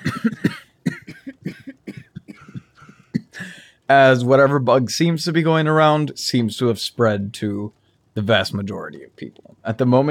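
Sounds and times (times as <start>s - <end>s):
people coughing in a room: 0.0s - 3.5s
speech: 3.9s - 10.0s.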